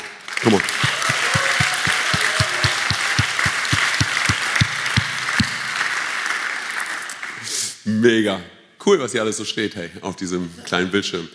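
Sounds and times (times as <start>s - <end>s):
large crowd clapping and cheering loudly: 0.0s - 7.4s
steady rhythmic low thump: 0.7s - 5.8s
speech: 8.0s - 11.3s.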